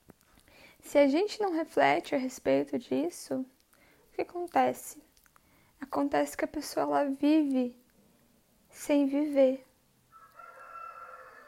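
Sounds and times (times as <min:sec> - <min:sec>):
low hum: 0:00.0 - 0:10.2
speech: 0:00.8 - 0:03.6, 0:04.2 - 0:05.0, 0:05.9 - 0:07.8, 0:08.7 - 0:09.7
rooster crowing: 0:10.1 - 0:11.4.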